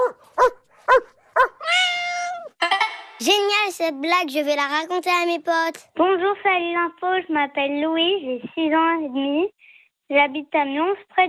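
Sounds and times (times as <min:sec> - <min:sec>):
dog barking: 0:00.0 - 0:01.6
dog whining howl: 0:01.4 - 0:02.5
speech: 0:03.2 - 0:11.2.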